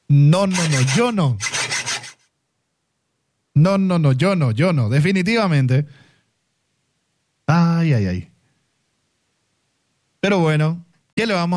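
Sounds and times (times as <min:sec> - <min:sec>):
speech: 0:00.1 - 0:01.5, 0:03.6 - 0:06.0, 0:07.5 - 0:08.3, 0:10.2 - 0:11.5
handsaw sawing with quick rasping strokes: 0:00.4 - 0:02.2.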